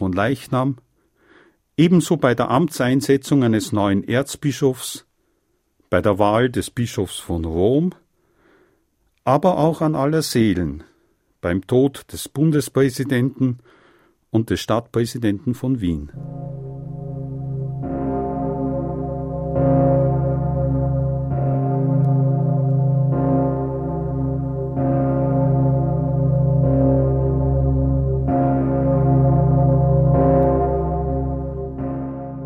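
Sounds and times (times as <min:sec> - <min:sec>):
speech: 0:00.1 - 0:00.9, 0:01.8 - 0:05.1, 0:05.9 - 0:08.0, 0:09.2 - 0:16.6
huge cathedral bell tolling: 0:15.6 - 0:32.4.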